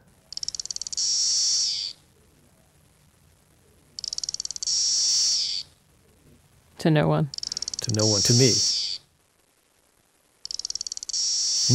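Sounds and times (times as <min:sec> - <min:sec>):
single cicada singing: 0:00.4 - 0:02.0, 0:04.0 - 0:05.7, 0:07.4 - 0:09.1, 0:10.4 - 0:11.7
speech: 0:06.8 - 0:08.7.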